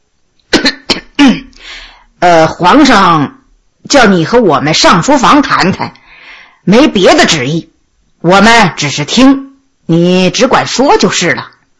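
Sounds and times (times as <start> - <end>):
person coughing: 0.5 - 1.6
breathy exhale: 1.6 - 2.2, 6.0 - 6.6
speech: 2.2 - 6.0, 6.6 - 11.5.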